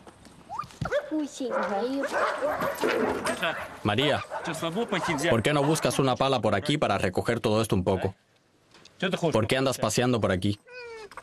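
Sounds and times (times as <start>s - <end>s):
dogs barking and yelping: 0.5s - 6.2s
speech: 1.1s - 8.3s, 9.0s - 10.7s.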